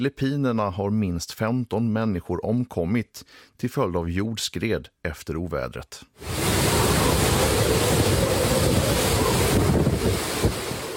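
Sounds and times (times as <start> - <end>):
speech: 0.0 - 6.7, 7.4 - 8.4
heavy typhoon surf pounding the shore: 6.2 - 10.9
typhoon storm wind buffeting the microphone on coast: 6.2 - 10.9.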